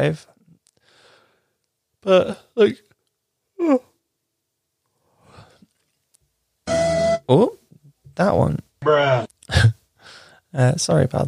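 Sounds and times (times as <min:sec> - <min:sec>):
speech: 0:00.0 - 0:00.3, 0:02.0 - 0:02.9, 0:03.6 - 0:03.9, 0:07.3 - 0:07.6, 0:08.2 - 0:09.8, 0:10.5 - 0:11.2
soft breathy exhale: 0:00.8 - 0:01.6, 0:05.1 - 0:05.7
person yawning: 0:03.6 - 0:03.9.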